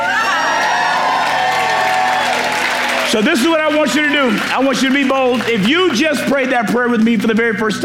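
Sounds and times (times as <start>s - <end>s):
church audience cheering and whooping at a water baptism: 0.0s - 5.8s
speech: 3.1s - 7.8s.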